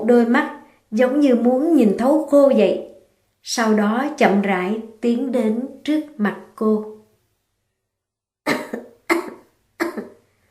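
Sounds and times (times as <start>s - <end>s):
speech: 0.1s - 6.9s
loud coughs: 8.5s - 10.2s.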